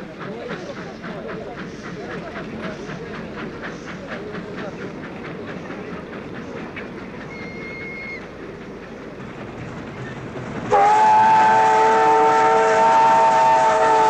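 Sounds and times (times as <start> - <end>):
train passing by a station: 0.0 - 14.0
train whistle: 10.7 - 14.0.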